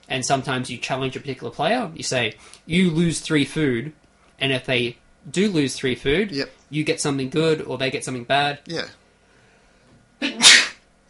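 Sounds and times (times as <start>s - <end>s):
speech: 0.1s - 9.0s
person sneezing: 10.2s - 11.0s.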